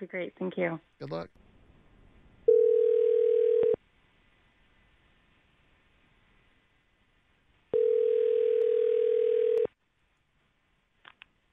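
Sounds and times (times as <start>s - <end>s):
speech: 0.0s - 1.4s
phone line ringing: 2.5s - 3.8s, 7.8s - 9.7s.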